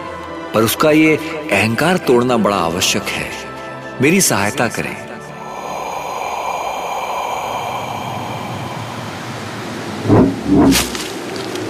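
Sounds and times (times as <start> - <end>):
speech: 0.5 - 5.1
howling snowstorm wind: 5.4 - 11.6.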